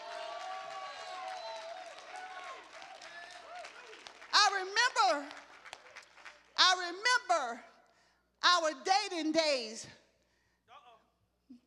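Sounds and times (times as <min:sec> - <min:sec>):
loud rising shouts: 0:00.0 - 0:04.0
overlapping voices and cheers: 0:00.0 - 0:06.6
crowd clapping hands in praise of the Lord: 0:00.0 - 0:06.8
speech: 0:04.6 - 0:05.4, 0:06.8 - 0:07.7, 0:08.5 - 0:10.0.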